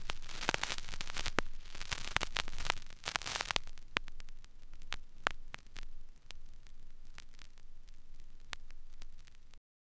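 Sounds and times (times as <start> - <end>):
needle coming off a vinyl record: 0.0 - 9.6.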